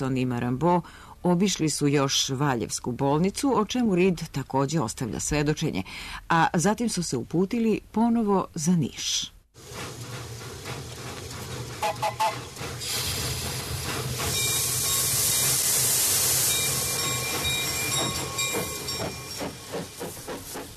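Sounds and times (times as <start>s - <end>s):
speech: 0.0s - 9.8s
steam locomotive chuffing at a railway station in Serbia: 9.6s - 20.7s.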